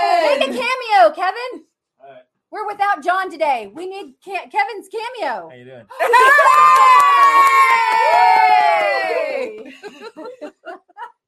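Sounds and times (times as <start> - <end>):
speech: 0.3 - 1.7, 2.5 - 10.8
loud crowd cheering and shouting: 6.0 - 9.7
laughter: 9.0 - 11.2.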